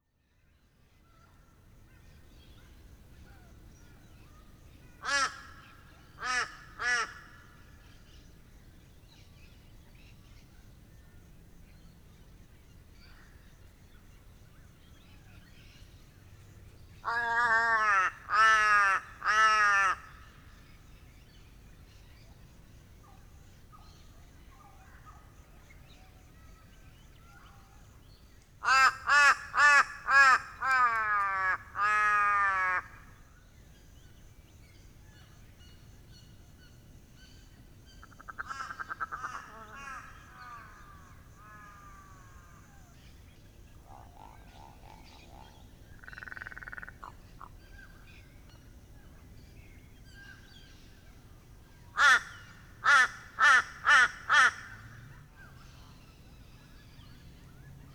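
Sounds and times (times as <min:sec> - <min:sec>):
crow cawing: 0:05.0 - 0:07.6, 0:17.0 - 0:20.4, 0:28.6 - 0:33.1, 0:38.1 - 0:42.5, 0:52.0 - 0:55.0.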